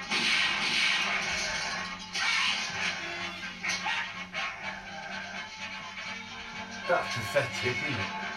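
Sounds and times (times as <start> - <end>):
two domestic dogs barking and snarling at each other: 0.1 - 6.1
speech: 7.2 - 8.2.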